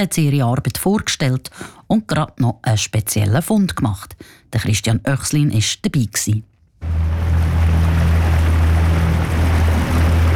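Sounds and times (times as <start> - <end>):
speech: 0.0 - 7.2
small boat motor droning on a lake: 6.8 - 10.3
wash of water and spray from a small boat on a lake: 6.8 - 10.3.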